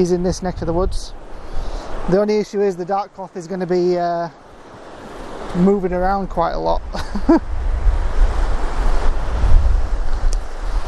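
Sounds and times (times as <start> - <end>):
speech: 0.0 - 1.2, 2.1 - 4.4, 5.5 - 7.5
strong wind buffeting the microphone on a beach: 0.0 - 2.2, 4.8 - 10.8
surf washing in on a beach: 0.0 - 10.8.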